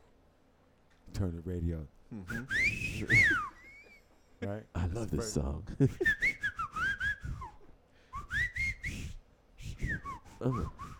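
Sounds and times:
speech: 0:01.2 - 0:03.6, 0:04.4 - 0:06.4, 0:10.4 - 0:10.8
person whistling in speech-like phrases: 0:02.3 - 0:04.1, 0:06.0 - 0:10.9.

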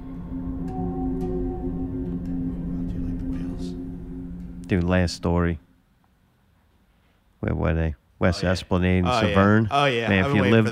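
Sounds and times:
whale song with low drawn-out moaning tones: 0:00.0 - 0:04.6
speech: 0:04.7 - 0:05.6, 0:07.4 - 0:10.7.

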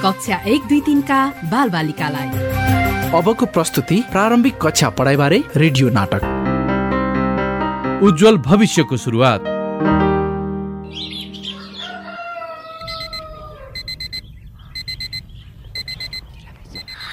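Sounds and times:
speech: 0:00.0 - 0:06.4, 0:08.0 - 0:10.0
sustained low musical tone: 0:00.0 - 0:12.6
rooster crowing: 0:11.4 - 0:14.2
alarm clock ringing at six in the morning: 0:12.9 - 0:14.2, 0:14.8 - 0:15.2, 0:15.8 - 0:16.2, 0:16.8 - 0:17.0.

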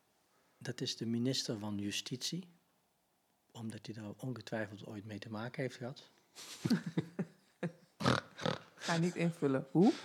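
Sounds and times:
speech: 0:00.6 - 0:02.6, 0:03.6 - 0:07.8, 0:08.9 - 0:10.0
person imitating a pig with rough snorting grunts: 0:08.0 - 0:08.7
person imitating a pig oinking: 0:08.0 - 0:08.8.

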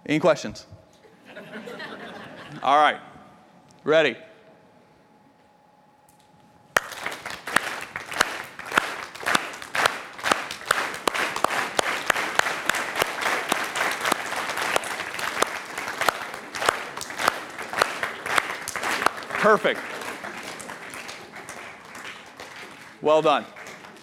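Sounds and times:
speech: 0:00.1 - 0:00.8, 0:02.5 - 0:03.1, 0:03.8 - 0:04.3, 0:19.4 - 0:19.9, 0:23.0 - 0:23.6
laughter: 0:01.0 - 0:02.9
audience clapping in unison: 0:06.8 - 0:24.0.

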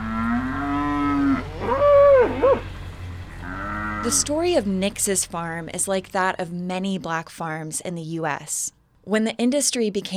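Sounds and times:
cattle on a U.S. farm mooing excitedly at feeding time: 0:00.0 - 0:04.6
speech: 0:04.0 - 0:10.1.

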